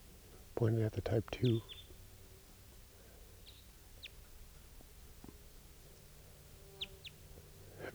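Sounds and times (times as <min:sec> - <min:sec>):
speech: 0:00.6 - 0:01.8
wild bird chirping: 0:00.6 - 0:02.2, 0:03.3 - 0:04.8, 0:06.6 - 0:07.9.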